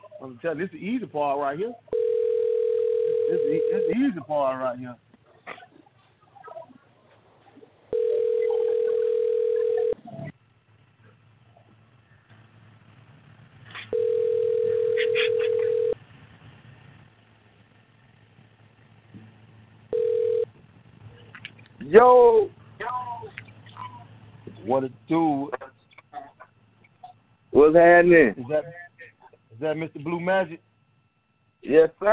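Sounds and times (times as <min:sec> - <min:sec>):
faint noise: 0:00.0 - 0:32.1
speech: 0:00.2 - 0:02.0, 0:03.3 - 0:05.0, 0:24.8 - 0:25.6, 0:27.7 - 0:28.8, 0:29.6 - 0:30.7, 0:31.7 - 0:32.1
telephone ringback tone: 0:01.9 - 0:04.1, 0:07.9 - 0:10.0, 0:13.9 - 0:16.0, 0:19.9 - 0:20.5.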